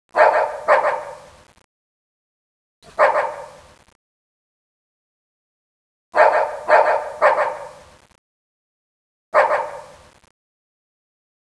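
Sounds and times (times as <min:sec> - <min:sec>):
dog barking: 0:00.1 - 0:01.3, 0:02.8 - 0:03.6, 0:06.2 - 0:07.8, 0:09.3 - 0:10.0.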